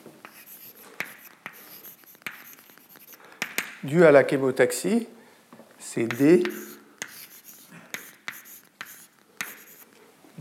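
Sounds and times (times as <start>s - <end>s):
writing on a board during a lecture: 0.2s - 3.6s, 6.0s - 9.9s
speech: 3.8s - 5.2s, 6.0s - 6.7s.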